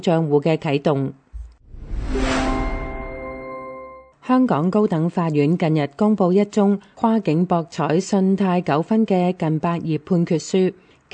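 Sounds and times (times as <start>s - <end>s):
speech: 0.0s - 1.2s, 4.3s - 11.1s
stock exchange opening bell ringing: 2.2s - 4.1s.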